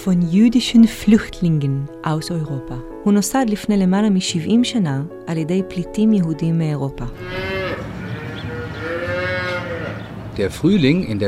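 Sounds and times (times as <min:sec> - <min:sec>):
speech: 0:00.0 - 0:07.5, 0:10.4 - 0:11.2
calves mooing in a huge barn on a kibbutz in the Negev desert: 0:07.1 - 0:10.2
steady hum of barn noise: 0:07.2 - 0:10.4.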